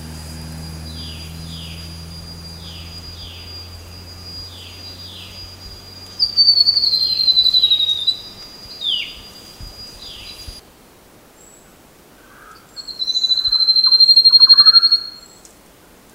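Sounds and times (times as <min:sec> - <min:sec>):
continuous shrill insect tone: 0:00.0 - 0:10.6, 0:12.4 - 0:15.4
grey-throated babbler calling: 0:00.0 - 0:10.6, 0:12.6 - 0:15.3.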